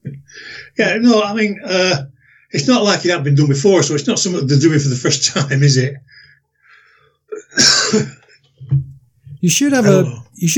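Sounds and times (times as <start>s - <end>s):
speech: 0.8s - 6.2s, 7.6s - 10.5s
harsh throaty cough: 7.3s - 8.4s.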